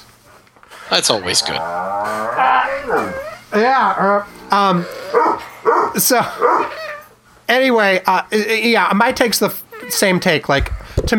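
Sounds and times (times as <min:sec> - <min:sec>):
speech: 0:00.9 - 0:06.6, 0:07.5 - 0:11.1
dog barking with high yelping barks: 0:05.1 - 0:06.8.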